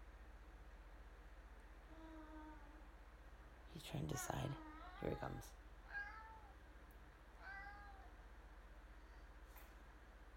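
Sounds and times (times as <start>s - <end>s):
speech: 3.8s - 5.6s
male pet cat meowing: 4.5s - 6.6s, 7.4s - 8.2s.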